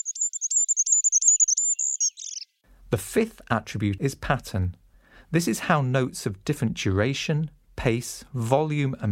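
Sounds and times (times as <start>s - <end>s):
very high thin bird call with piercing whistle and chirps: 0.0s - 2.6s
speech: 2.9s - 9.1s.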